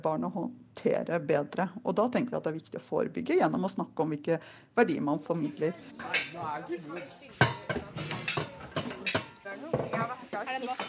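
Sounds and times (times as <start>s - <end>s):
speech: 0.0s - 8.2s, 8.8s - 10.8s
frying pans clanking while washed up in a school kitchen: 5.4s - 10.8s
water: 8.1s - 10.8s.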